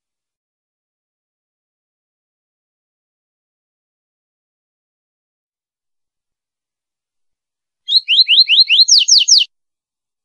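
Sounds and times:
female double-collared seedeater singing sharp whistled notes: 0:07.9 - 0:09.5.

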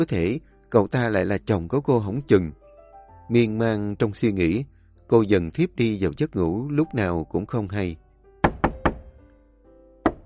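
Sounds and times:
speech: 0:00.0 - 0:02.6, 0:03.3 - 0:08.0
knuckles knocking on a door: 0:08.4 - 0:09.2, 0:10.0 - 0:10.2.

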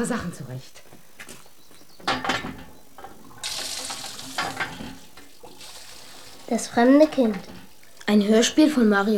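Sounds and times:
speech: 0:00.0 - 0:01.0, 0:06.5 - 0:09.1
water splashing from a hand pump as someone washes: 0:03.4 - 0:08.1.

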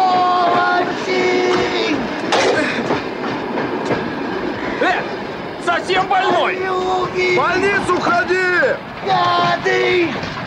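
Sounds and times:
rhythmic rail clatter: 0:00.0 - 0:10.4
train pulling away with a loud rumble: 0:00.0 - 0:10.4.

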